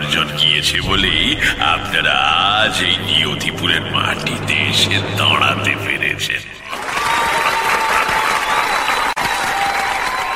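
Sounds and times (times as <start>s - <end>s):
speech: 0.2s - 6.6s
crowd applause after a speech at a gathering: 6.7s - 10.3s.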